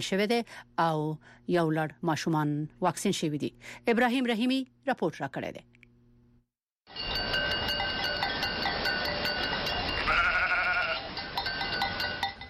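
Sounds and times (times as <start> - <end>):
speech: 0.0 - 5.8
clinking bells: 6.9 - 12.4
herd of sheep and goats bleating on seasonal migration: 9.9 - 11.1.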